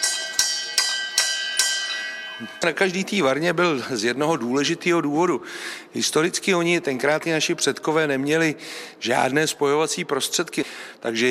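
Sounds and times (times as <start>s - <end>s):
small brewhouse signal bell ringing: 0.0s - 3.0s
speech: 2.4s - 11.2s.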